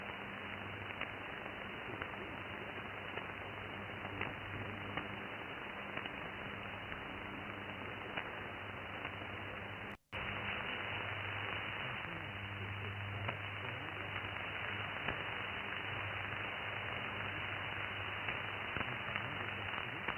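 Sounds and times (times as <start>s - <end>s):
9720 kHz shortwave radio broadcast: 0.0s - 20.1s.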